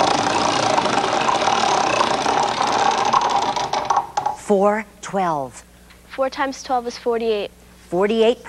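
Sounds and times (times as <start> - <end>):
game wheels being spun in a children's educational TV game bonus round: 0.0 - 4.4
speech: 4.5 - 8.4.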